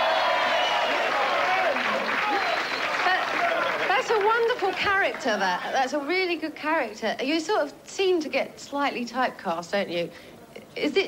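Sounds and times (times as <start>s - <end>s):
studio audience applauding: 0.0s - 5.4s
speech: 4.3s - 11.0s.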